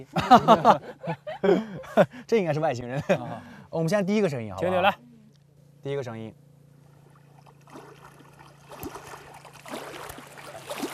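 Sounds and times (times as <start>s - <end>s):
laughter: 0.0s - 2.2s, 2.9s - 3.5s
speech: 0.0s - 5.1s, 5.8s - 6.4s
gentle lake waves and water lapping: 6.8s - 10.9s.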